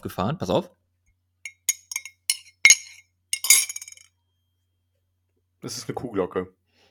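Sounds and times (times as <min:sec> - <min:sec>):
speech: 0:00.0 - 0:00.8, 0:05.6 - 0:06.6
metal spoon clinking against a ceramic coffee cup: 0:01.5 - 0:04.0.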